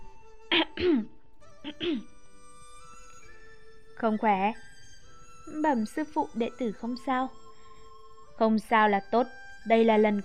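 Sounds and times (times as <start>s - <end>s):
light dry coughs: 0.5s - 1.1s, 1.7s - 2.1s
speech: 0.8s - 2.1s, 4.0s - 4.7s, 5.5s - 7.4s, 8.4s - 10.2s.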